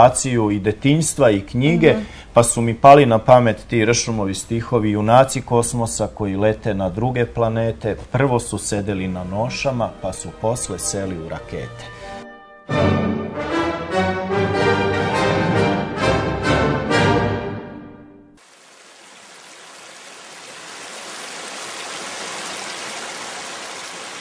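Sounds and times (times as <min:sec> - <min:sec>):
speech: 0:00.0 - 0:12.0
tonal music: 0:09.4 - 0:18.4
babbling brook: 0:18.4 - 0:24.1.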